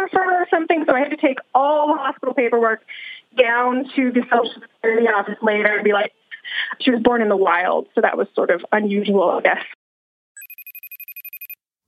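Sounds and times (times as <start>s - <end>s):
speech: 0.5s - 9.8s
telephone ringing on an outgoing call: 10.4s - 11.6s.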